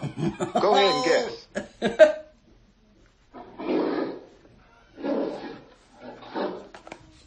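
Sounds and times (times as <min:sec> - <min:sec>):
laughter: 0:00.0 - 0:02.3
speech: 0:00.2 - 0:02.2
bear growling in low rumbling bursts: 0:03.3 - 0:06.8.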